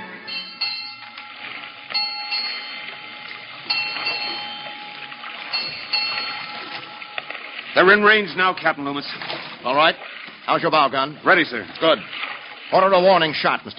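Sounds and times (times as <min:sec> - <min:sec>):
ship's bell striking eight bells of the fourth watch: 0:00.0 - 0:09.4
speech: 0:07.8 - 0:13.7.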